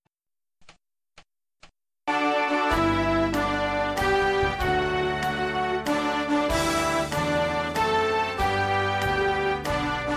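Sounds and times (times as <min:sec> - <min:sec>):
instrumental party song in G: 0:02.1 - 0:10.1.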